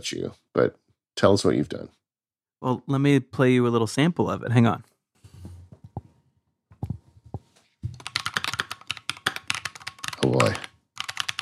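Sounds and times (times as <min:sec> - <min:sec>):
speech: 0:00.0 - 0:02.0, 0:02.6 - 0:04.9, 0:10.2 - 0:10.6
rapid typing on a clicky mechanical keyboard: 0:08.0 - 0:11.3.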